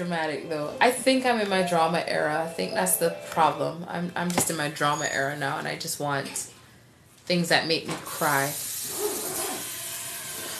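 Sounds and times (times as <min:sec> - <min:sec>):
speech: 0:00.0 - 0:06.6, 0:07.3 - 0:09.0
kitchen sink sprayer spraying water: 0:08.0 - 0:10.5.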